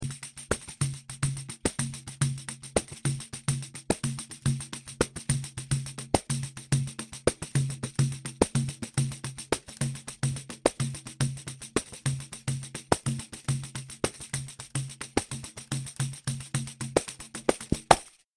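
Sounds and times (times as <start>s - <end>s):
pandeiro: 0.0s - 18.2s.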